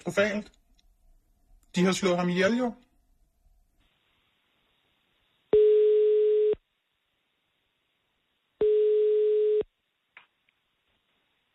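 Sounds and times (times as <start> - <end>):
speech: 0.0 - 0.6, 1.7 - 2.8
telephone ringback tone on a call to the Social and Health Administration: 5.5 - 6.6, 8.6 - 9.6.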